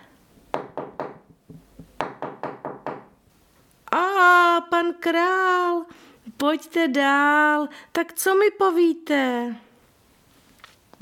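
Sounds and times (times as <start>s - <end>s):
knocking on a wooden door: 0.5s - 3.1s
speech: 3.9s - 9.6s.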